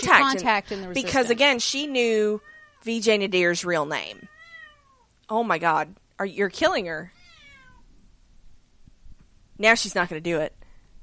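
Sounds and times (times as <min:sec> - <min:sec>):
speech: 0:00.0 - 0:04.3, 0:05.3 - 0:07.2, 0:09.6 - 0:10.6
cat meowing in protest: 0:02.3 - 0:02.9, 0:04.2 - 0:05.1, 0:07.1 - 0:07.9.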